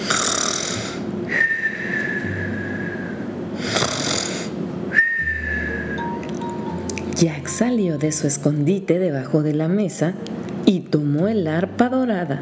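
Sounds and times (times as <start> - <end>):
giant snoring with whistling exhales: 0.0 - 1.0, 3.7 - 4.5
low rumbling drone: 1.0 - 3.7, 4.9 - 8.8
speech: 7.2 - 12.4.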